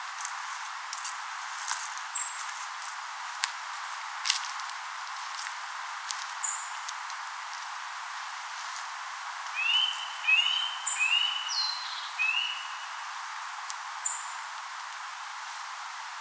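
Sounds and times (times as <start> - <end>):
steady hiss: 0.0 - 16.2
Eurasian nuthatch Sitta europaea calling upslurred whistled notes: 9.6 - 13.0.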